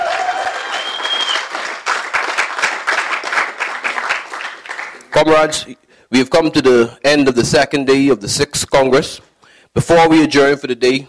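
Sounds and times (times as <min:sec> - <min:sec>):
whistles or cheers: 0:00.0 - 0:01.6
audience applause: 0:00.0 - 0:05.2
speech: 0:05.2 - 0:11.0.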